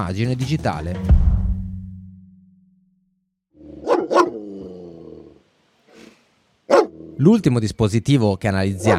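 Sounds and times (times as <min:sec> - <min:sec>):
speech: 0:00.0 - 0:01.3, 0:07.2 - 0:08.9
explosive-detection dog barking: 0:03.6 - 0:04.6, 0:06.7 - 0:07.2, 0:08.8 - 0:08.9
explosive-detection dog growling low: 0:03.6 - 0:07.2.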